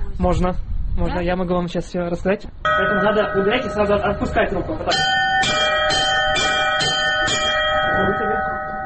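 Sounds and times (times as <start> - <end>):
speech: 0.2 - 5.6
church bell struck by a person learning to ring bells: 2.7 - 8.8.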